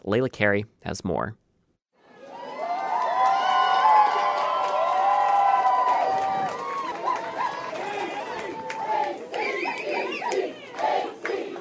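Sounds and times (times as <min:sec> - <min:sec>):
speech: 0:00.0 - 0:01.4
large crowd of well-wishers cheering and shouting outdoors in Ketchikan: 0:02.0 - 0:11.6.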